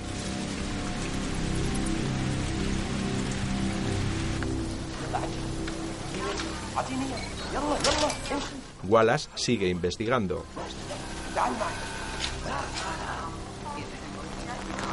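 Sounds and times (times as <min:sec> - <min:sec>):
steady rain falling at night in a ghetto: 0:00.0 - 0:14.9
speech: 0:06.8 - 0:10.8, 0:11.4 - 0:11.9.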